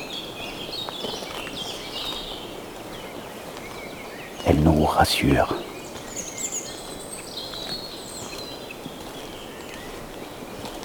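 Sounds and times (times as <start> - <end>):
chorus of birds singing in a fir forest: 0.0 - 10.8
steady outdoor hiss: 2.4 - 10.5
speech: 4.4 - 5.7.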